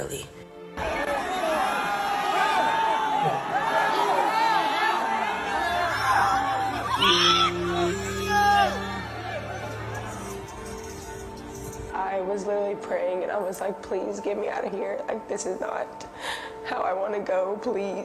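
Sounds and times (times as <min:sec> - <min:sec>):
speech: 0:00.0 - 0:01.0, 0:12.9 - 0:18.0
concert music playing: 0:00.0 - 0:18.0
large concert crowd screaming and yelling in panic: 0:00.8 - 0:11.7.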